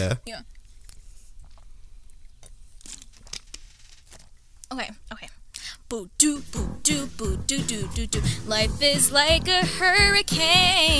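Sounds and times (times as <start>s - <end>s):
speech: 0.0s - 0.5s, 4.7s - 5.1s, 5.9s - 10.9s
person sipping water: 0.5s - 3.2s.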